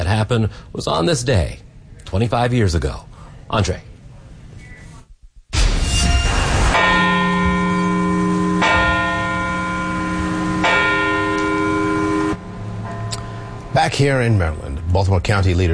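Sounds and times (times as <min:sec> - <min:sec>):
speech: 0:00.1 - 0:03.9, 0:13.8 - 0:15.7
church bells tolling: 0:06.2 - 0:15.7.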